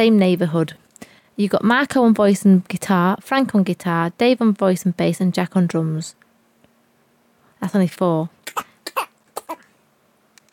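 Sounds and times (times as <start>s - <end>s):
speech: 0.0s - 0.8s, 1.4s - 6.2s, 7.6s - 8.7s
cough with a simultaneous fart: 8.5s - 9.7s.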